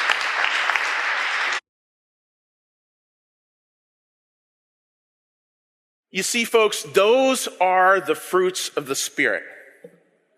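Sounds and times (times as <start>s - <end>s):
crowd applauding: 0.0s - 1.6s
speech: 6.1s - 10.0s.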